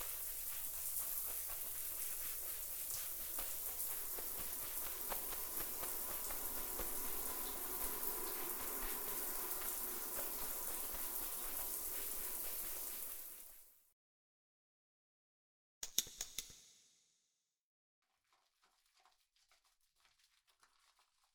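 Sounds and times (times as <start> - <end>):
running water splashing for washing hair: 0.0 - 13.6.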